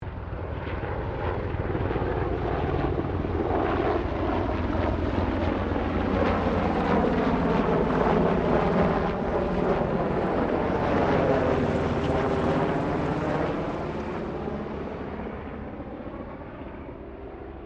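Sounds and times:
1990 Sikorsky UH-60 Black Hawk helicopter passing: 0:00.0 - 0:17.6.

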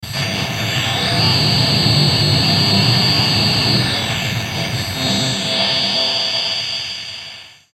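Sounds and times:
musical high-pitched distortion feedback: 0:00.0 - 0:07.5.

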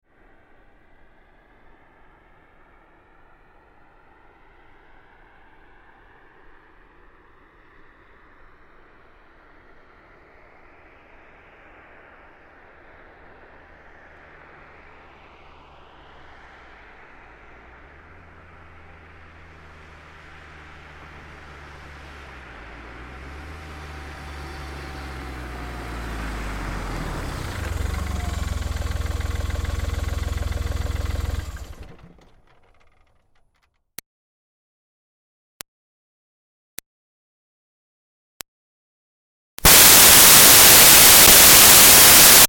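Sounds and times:
2005 Smart Fortwo car pulling up and stopping: 0:00.1 - 0:33.8, 0:39.6 - 0:42.4.

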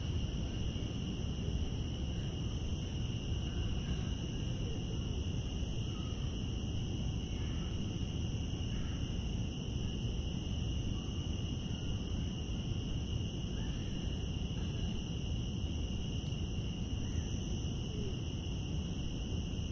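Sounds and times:
cicadas droning outdoors in Central Park: 0:00.0 - 0:19.7.

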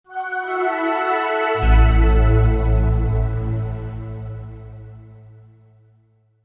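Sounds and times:
short musical style phrase for computer shutdown: 0:00.1 - 0:05.6.

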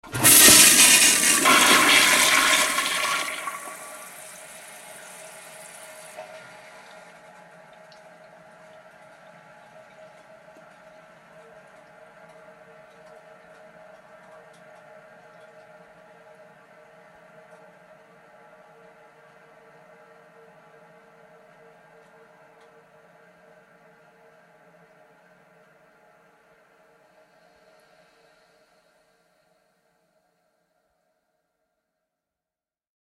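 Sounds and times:
yacht marine toilet flushing with lid up: 0:00.0 - 0:07.2.

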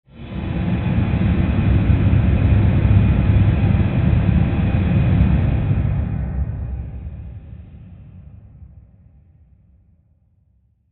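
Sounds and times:
airy rushing rumble: 0:00.1 - 0:09.0.

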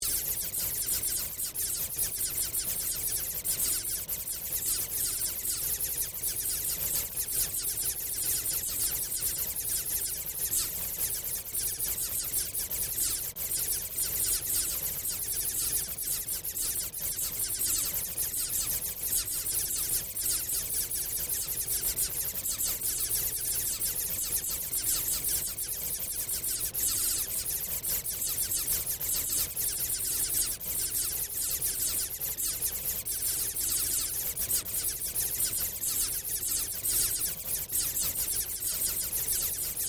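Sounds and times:
artificial electronic bat ambience created through sound manipulation: 0:00.0 - 0:39.8.

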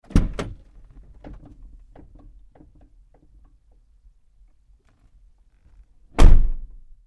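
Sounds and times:
GMC Savana truck interior door opening and closing: 0:00.0 - 0:00.7, 0:06.1 - 0:06.7.

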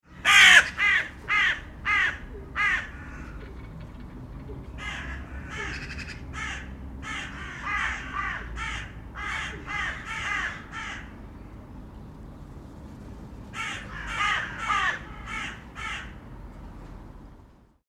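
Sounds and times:
crow calling: 0:00.1 - 0:11.2, 0:13.5 - 0:16.3.

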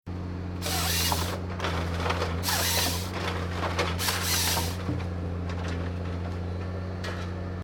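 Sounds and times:
industrial forestry tree harvester cutting logs into pile: 0:00.2 - 0:07.6
chainsaw: 0:00.6 - 0:01.4, 0:02.4 - 0:03.2, 0:04.0 - 0:04.8.

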